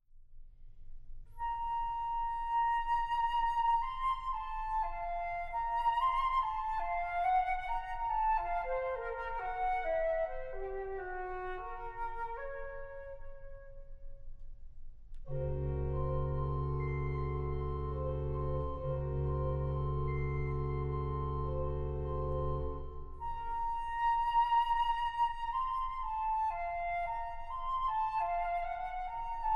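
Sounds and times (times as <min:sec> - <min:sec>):
flute: 0:01.3 - 0:14.3, 0:15.1 - 0:29.5
organ: 0:15.3 - 0:22.9.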